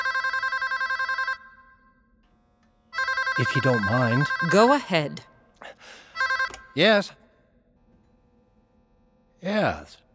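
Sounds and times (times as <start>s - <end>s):
telephone ringing: 0.0s - 1.6s, 3.0s - 5.2s, 6.2s - 6.8s
speech: 3.4s - 5.3s, 6.8s - 7.2s, 9.4s - 10.0s.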